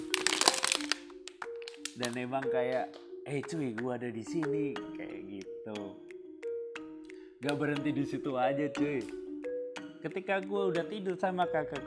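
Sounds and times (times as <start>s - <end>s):
plastic bottle being crinkled: 0.0s - 3.1s
speech: 2.0s - 6.0s, 7.4s - 9.2s, 10.0s - 11.8s.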